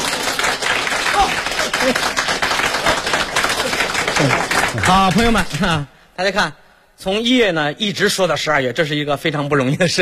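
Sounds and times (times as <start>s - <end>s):
audience applause at a comedic stage performance: 0.0s - 5.8s
speech: 1.8s - 2.2s, 4.2s - 10.0s.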